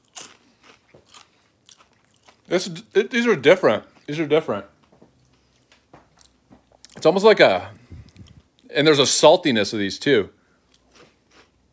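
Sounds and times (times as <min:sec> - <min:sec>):
crunchy snack food being bitten and chewed: 0:00.0 - 0:02.5, 0:10.7 - 0:11.7
speech: 0:02.5 - 0:04.7, 0:07.0 - 0:07.8, 0:08.7 - 0:10.4.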